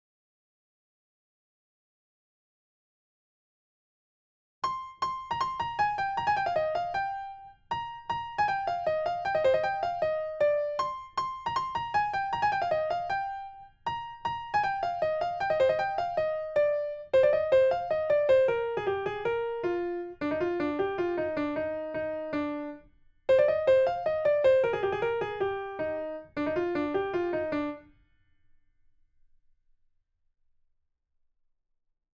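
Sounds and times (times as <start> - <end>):
lead piano playing: 4.6 - 27.8.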